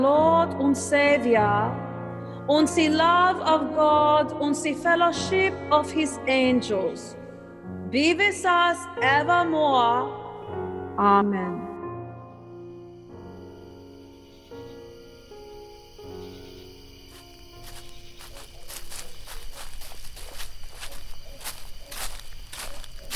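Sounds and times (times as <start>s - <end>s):
speech: 0.0s - 1.8s, 2.5s - 7.2s, 7.9s - 10.2s, 11.0s - 11.7s
footsteps crunching at walking pace through a cemetery: 17.0s - 23.1s.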